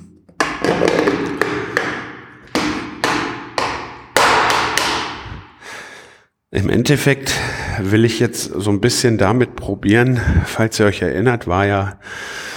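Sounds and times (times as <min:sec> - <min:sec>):
taps and knocks from opening a paint bucket: 0:00.3 - 0:05.0
speech: 0:06.5 - 0:12.5.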